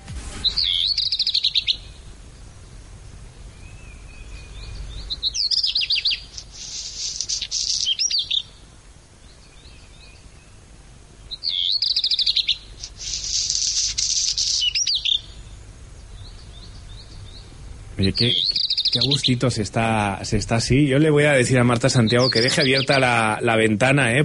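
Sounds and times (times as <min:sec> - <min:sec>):
birds chirping and singing: 0:00.0 - 0:24.2
speech: 0:18.0 - 0:24.2.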